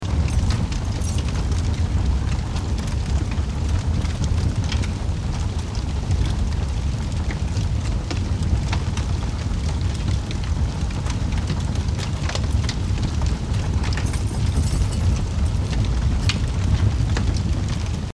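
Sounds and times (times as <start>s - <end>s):
car on fire burning: 0.0s - 18.1s.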